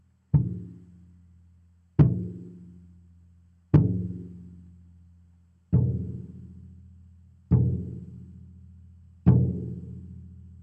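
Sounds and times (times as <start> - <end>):
big drum: 0.3 - 0.9, 2.0 - 2.8, 3.8 - 4.6, 5.7 - 6.7, 7.5 - 8.5, 9.2 - 10.6.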